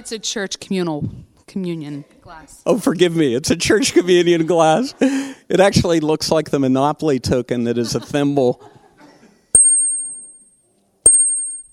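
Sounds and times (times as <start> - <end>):
speech: 0.0 - 8.8
laughter: 3.6 - 5.4, 7.6 - 9.5
handbells and chimes from a handbell ensemble ringing: 9.6 - 11.7.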